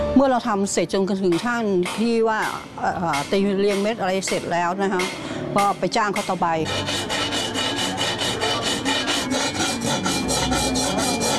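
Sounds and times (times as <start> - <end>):
speech: 0.2 - 7.0
hand filing with a rasp: 3.1 - 11.3.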